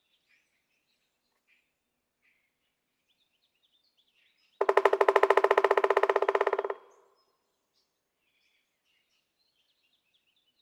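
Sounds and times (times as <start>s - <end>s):
pileated woodpecker fast run of hard notes: 4.6s - 7.2s.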